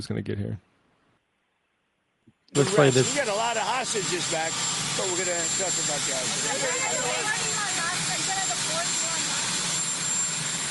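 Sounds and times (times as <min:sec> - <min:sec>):
speech: 0:00.0 - 0:00.7, 0:02.5 - 0:07.5
indistinct voices: 0:02.5 - 0:09.4
jet airplane roar: 0:02.5 - 0:10.6.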